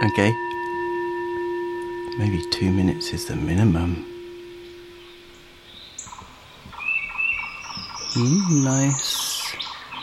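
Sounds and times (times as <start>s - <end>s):
speech: 0.0s - 0.5s, 2.2s - 4.1s, 8.2s - 9.2s
bird calling in forest sounds recording played on smart speaker: 0.0s - 10.0s
soft hiss of woodland sound: 0.2s - 10.0s.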